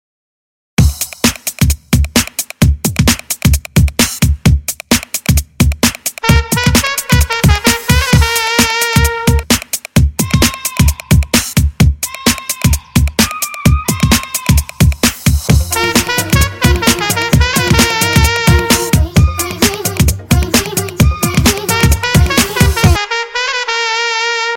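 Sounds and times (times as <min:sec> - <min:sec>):
drums: 0:00.8 - 0:23.0
horn: 0:06.2 - 0:09.5, 0:15.5 - 0:19.2, 0:21.6 - 0:24.5.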